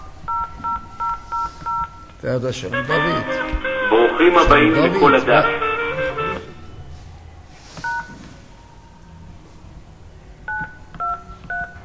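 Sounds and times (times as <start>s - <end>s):
telephone keypad DTMF tones being dialed: 0.3s - 2.2s, 10.5s - 11.8s
speech: 2.2s - 3.6s, 4.2s - 5.6s.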